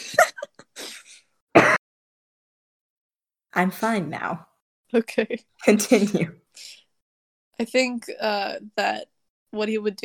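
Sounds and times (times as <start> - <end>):
throat-clearing cough from an irritated throat: 1.6 - 1.8
speech: 3.6 - 6.8, 7.6 - 10.0.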